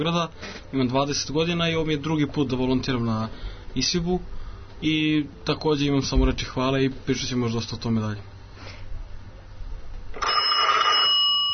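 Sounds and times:
speech: 0:00.0 - 0:08.3
telephone ringing with a bright trilling ring: 0:10.2 - 0:11.5.

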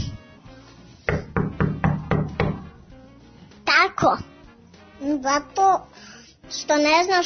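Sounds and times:
knocking on a door: 0:01.1 - 0:02.8
speech: 0:04.0 - 0:04.3, 0:05.0 - 0:07.2.

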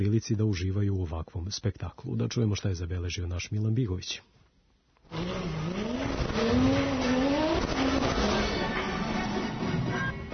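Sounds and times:
speech: 0:00.0 - 0:04.4, 0:05.1 - 0:05.8, 0:06.4 - 0:07.1
Formula 1 race car engine roaring and revving: 0:05.1 - 0:10.3
race car tires squealing: 0:05.1 - 0:10.3.

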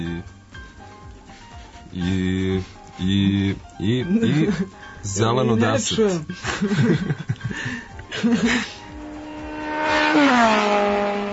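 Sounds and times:
speech: 0:02.0 - 0:08.8
people laughing: 0:06.3 - 0:08.8
racing engine whining as it passes by: 0:08.0 - 0:11.3.

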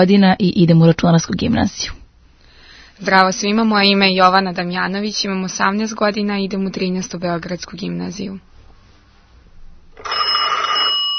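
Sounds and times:
speech: 0:00.0 - 0:02.0, 0:03.0 - 0:08.5
faint noise: 0:00.0 - 0:11.1
telephone ringing in a radio studio: 0:10.0 - 0:11.1.

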